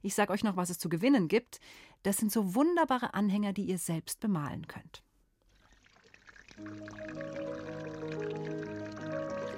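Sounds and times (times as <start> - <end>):
speech: 0.0 - 5.1, 6.6 - 7.4
water trickling and pouring with ringing tones: 5.4 - 9.5.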